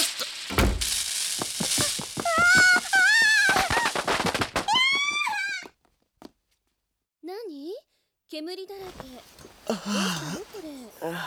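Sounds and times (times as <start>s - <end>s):
spinning ground firecracker crackling and popping: 0.0s - 5.8s, 8.9s - 11.2s
speech: 8.4s - 11.2s.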